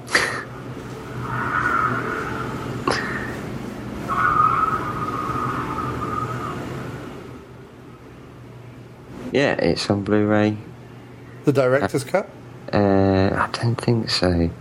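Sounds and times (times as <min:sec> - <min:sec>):
Porsche tires squealing in a skid: 0:01.0 - 0:03.4, 0:04.0 - 0:07.2
speech: 0:09.4 - 0:10.7, 0:11.4 - 0:14.5.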